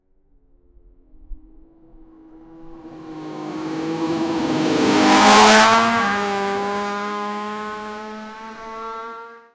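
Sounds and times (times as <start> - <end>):
race car driving: 2.2 - 9.5.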